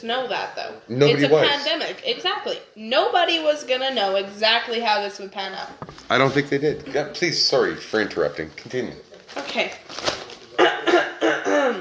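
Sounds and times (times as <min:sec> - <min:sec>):
speech: 0:00.0 - 0:11.0
loud rough coughs: 0:10.6 - 0:11.7.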